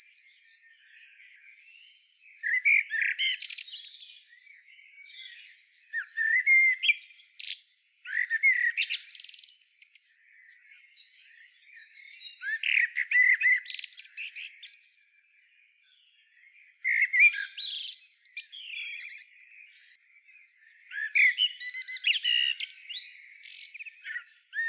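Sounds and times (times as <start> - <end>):
common blackbird singing fluty phrases with squeaky high twitters: 0.0 - 24.6.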